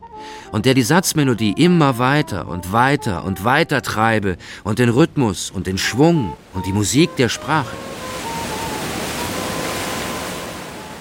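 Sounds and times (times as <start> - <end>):
speech: 0.5 - 7.9
long Pacific Ocean waves washing onto a sandy beach along a highway: 5.5 - 10.9.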